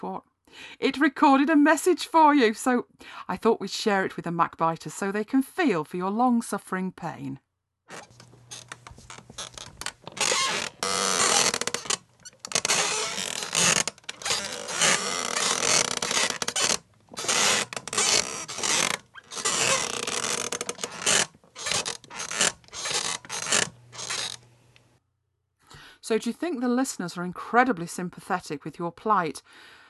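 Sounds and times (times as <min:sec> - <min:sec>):
speech: 0:00.0 - 0:08.2, 0:26.1 - 0:29.8
squeaky office chair creaking and groaning: 0:07.9 - 0:25.0.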